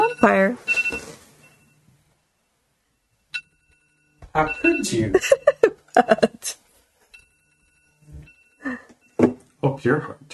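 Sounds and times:
high-pitched electronic alarm tone: 0.0s - 1.8s, 2.4s - 5.6s, 7.1s - 9.2s
speech: 0.2s - 0.7s, 4.4s - 6.6s, 9.8s - 10.3s
laughter: 4.9s - 6.5s.

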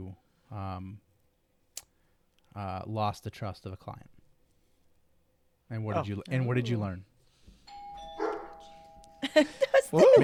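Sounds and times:
speech: 0.0s - 1.1s, 2.6s - 4.1s, 5.7s - 7.1s, 9.2s - 10.2s
electronic doorbell chiming: 7.7s - 9.5s.

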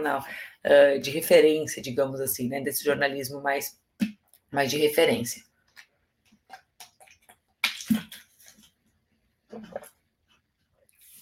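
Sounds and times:
speech: 0.0s - 3.8s, 4.5s - 5.5s
sipping and swallowing of water: 5.6s - 10.2s.

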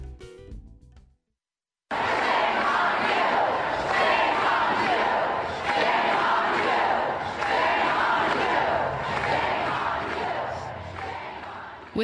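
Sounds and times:
large crowd chanting in unison at a protest rally: 1.9s - 12.0s.

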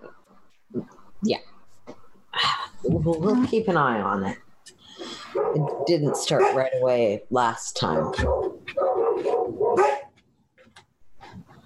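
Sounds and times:
speech: 0.7s - 1.5s, 3.0s - 4.4s, 5.5s - 8.5s
dogs barking excitedly at night: 5.1s - 7.2s, 7.8s - 10.2s.

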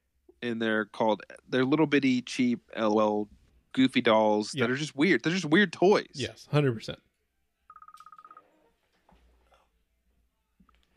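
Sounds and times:
speech: 0.4s - 7.1s
incoming phone call ringtone beeps: 7.7s - 8.5s.

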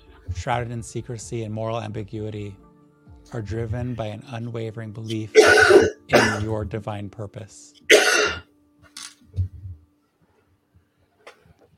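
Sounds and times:
speech: 0.4s - 2.6s, 3.3s - 8.4s
short rough coughs: 5.3s - 6.5s, 7.9s - 8.4s.

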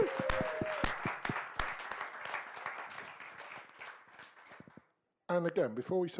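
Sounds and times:
audience round of applause: 0.0s - 4.8s
speech: 5.4s - 6.1s.

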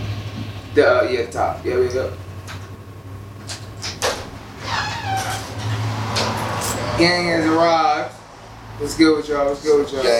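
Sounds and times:
speech: 0.8s - 2.3s, 7.0s - 8.2s, 8.8s - 10.1s
creaking door hinges: 3.4s - 7.1s.

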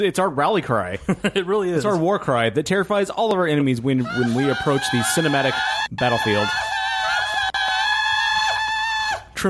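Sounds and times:
speech: 0.0s - 6.8s
loud high-pitched human scream: 4.0s - 9.4s.

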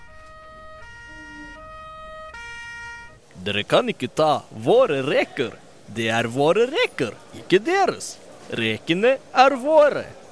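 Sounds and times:
emergency vehicle sirens wailing in stepped alternating tones: 0.0s - 3.3s
low traffic rumble: 0.0s - 10.2s
speech: 3.4s - 10.2s.

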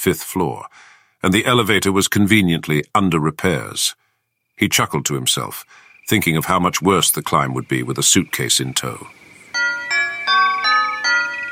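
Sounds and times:
speech: 0.0s - 4.0s, 4.6s - 9.6s
melodic porch doorbell chime: 9.6s - 11.5s.

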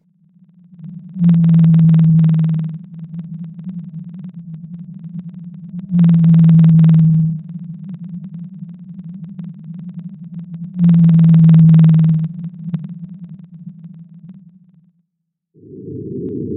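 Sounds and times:
whale song in the Pacific Ocean: 0.1s - 14.8s, 15.6s - 16.5s.

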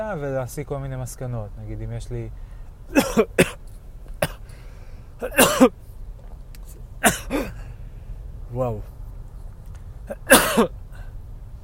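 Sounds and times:
speech: 0.0s - 3.6s, 5.2s - 5.8s, 7.0s - 7.6s, 8.5s - 8.9s, 10.1s - 10.8s
harsh coughing fit: 2.9s - 3.6s, 4.2s - 4.6s, 5.2s - 5.8s, 7.0s - 7.7s, 10.1s - 11.1s.

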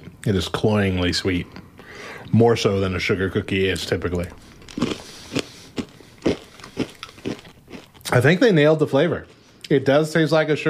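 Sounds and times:
faint hiss: 0.0s - 10.6s
speech: 0.2s - 5.0s, 8.2s - 10.6s
sugar cookie flavored M&M candies crunching between the teeth: 4.2s - 8.4s.

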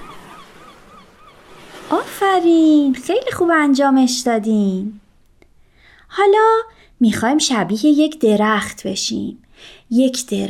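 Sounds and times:
seagulls calling: 0.0s - 2.2s
ocean waves: 0.0s - 3.8s
speech: 1.9s - 5.0s, 6.1s - 10.4s.

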